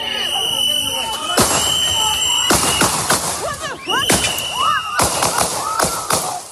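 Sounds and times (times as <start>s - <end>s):
people shouting and yelling: 0.0s - 6.5s
gunshots fired at point-blank range by an immigration agent in a US city: 1.3s - 6.5s.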